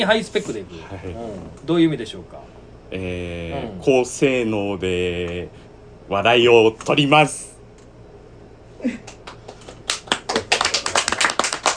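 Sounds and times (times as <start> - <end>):
speech: 0.0 - 7.5, 8.8 - 9.2
applause from many hands clapping: 9.0 - 11.7.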